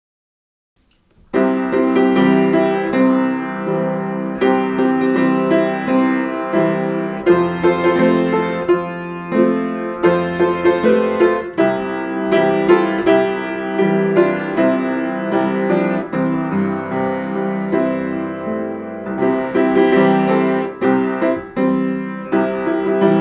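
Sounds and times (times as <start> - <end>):
gospel song on piano: 0.8 - 23.2.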